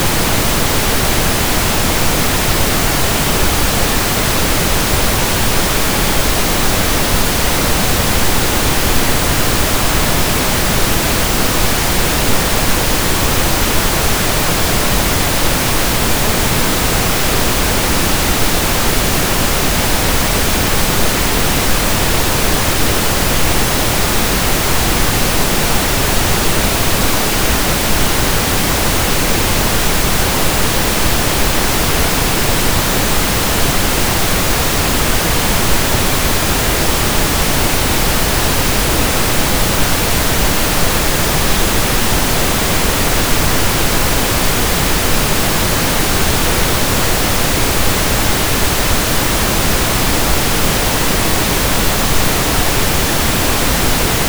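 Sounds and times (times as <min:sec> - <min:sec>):
stereo pink noise: 0:00.0 - 0:54.2.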